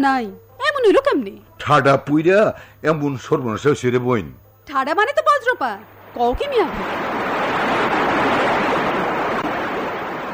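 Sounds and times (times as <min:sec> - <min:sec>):
speech: 0:00.0 - 0:07.4
heavy rain: 0:06.0 - 0:10.3
strong storm wind: 0:06.0 - 0:10.3.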